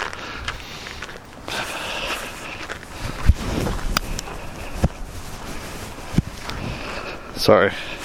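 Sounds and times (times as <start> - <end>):
moderate outdoor wind blowing: 0.4 - 8.0
speech: 7.4 - 8.0.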